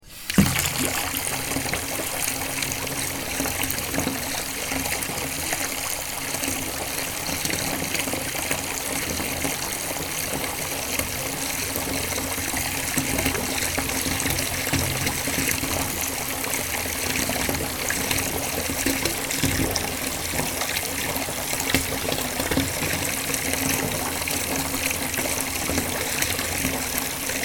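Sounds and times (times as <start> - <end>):
lots of water falling: 0.0 - 27.4.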